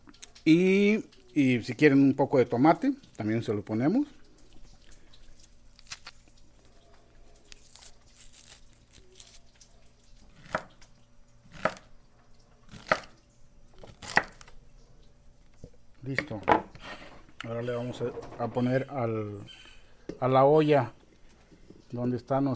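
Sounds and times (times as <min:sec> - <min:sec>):
low hum: 0:00.0 - 0:22.5
speech: 0:00.4 - 0:04.2, 0:18.0 - 0:19.6, 0:20.2 - 0:21.0, 0:21.9 - 0:22.5
peeling pacaya palm flowers: 0:04.1 - 0:14.7
knife chopping pacaya palm flowers on a cutting board: 0:12.7 - 0:13.1, 0:13.9 - 0:14.4.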